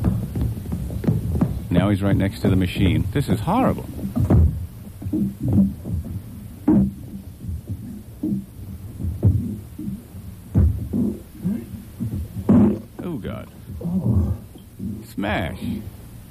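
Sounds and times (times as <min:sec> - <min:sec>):
running footsteps on taped recording: 0:00.0 - 0:15.9
faint hum: 0:00.0 - 0:16.2
speech: 0:01.8 - 0:04.0, 0:05.1 - 0:05.8, 0:15.2 - 0:16.0.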